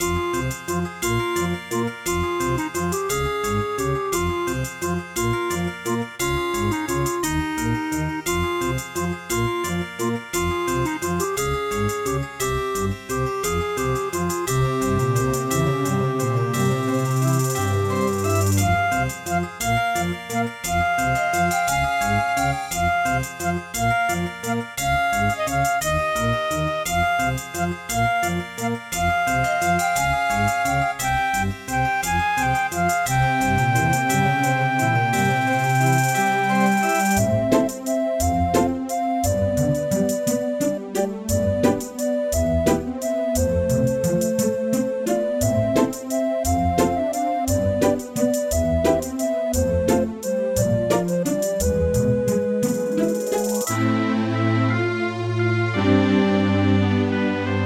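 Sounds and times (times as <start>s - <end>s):
Casio CTK-800 electronic keyboard: 0.0s - 57.6s.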